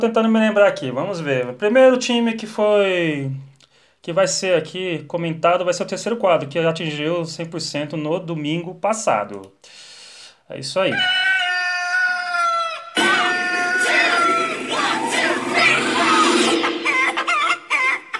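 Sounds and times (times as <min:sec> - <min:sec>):
speech: 0:00.0 - 0:09.9, 0:10.5 - 0:11.4
rooster crowing: 0:11.0 - 0:18.0.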